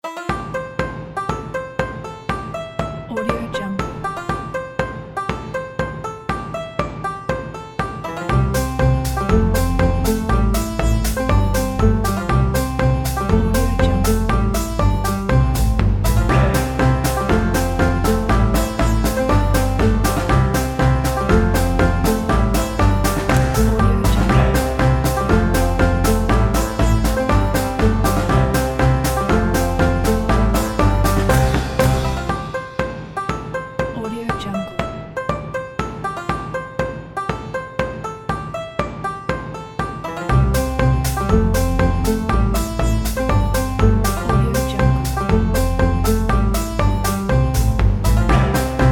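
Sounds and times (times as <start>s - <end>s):
cheerful folk banjo music: 0.0s - 48.8s.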